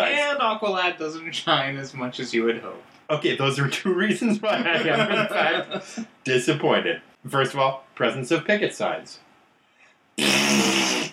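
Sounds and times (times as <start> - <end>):
speech: 0.5 - 9.2
laughter: 4.1 - 6.1
raspberry blown with the lips as a mouth fart noise: 10.2 - 11.1.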